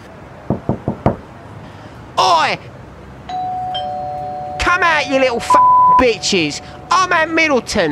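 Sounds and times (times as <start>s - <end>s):
heavy banging on the front door of a house: 0.5s - 1.3s
speech: 2.2s - 2.7s, 4.7s - 7.9s.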